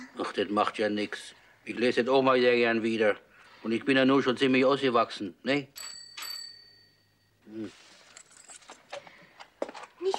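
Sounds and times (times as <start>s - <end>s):
speech: 0.4s - 6.0s, 7.5s - 7.8s
bright metallic bell ringing: 5.7s - 7.4s.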